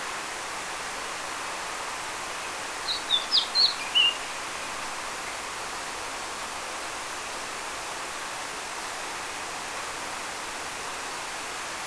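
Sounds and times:
soft steady hiss: 0.0s - 11.8s
Eurasian blackcap Sylvia atricapilla giving high thin chirps: 2.9s - 4.2s.

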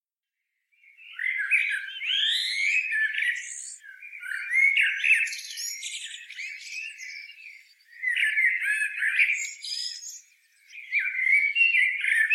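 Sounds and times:
Eurasian blackbird Turdus merula squeaky scratchy twittering with whistled slurs: 0.9s - 12.3s.

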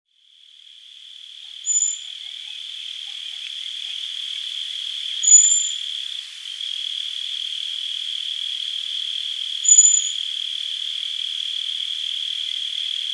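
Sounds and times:
steady shrill insect hum: 0.2s - 13.1s
common blackbird Turdus merula high-pitched whistles: 1.7s - 2.1s, 5.2s - 5.8s, 9.7s - 10.2s.

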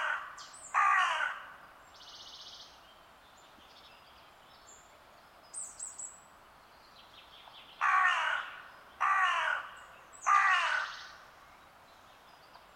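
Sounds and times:
Corvus corone carrion crow harsh cawing: 0.0s - 1.6s, 7.8s - 11.1s.

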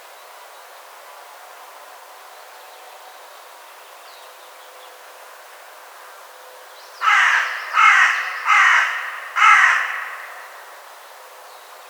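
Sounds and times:
carrion crow (Corvus corone) cawing: 7.0s - 10.9s.

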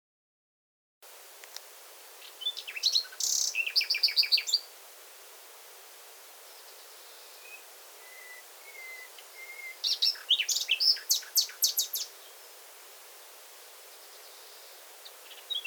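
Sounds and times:
Common nightingale Luscinia megarhynchos song: 1.1s - 15.6s.

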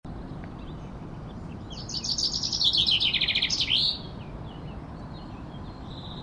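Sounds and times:
common chaffinch singing, Fringilla coelebs: 0.1s - 6.2s.

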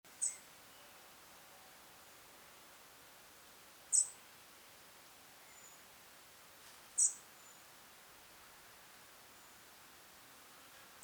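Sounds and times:
soft background hiss: 0.1s - 11.0s
European robin Erithacus rubecula calling: 3.9s - 4.2s.

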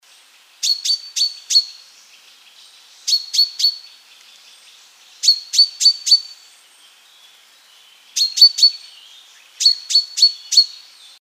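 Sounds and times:
common chaffinch Fringilla coelebs chirping: 3.0s - 3.9s, 5.2s - 6.4s, 8.2s - 9.0s, 9.6s - 10.9s.

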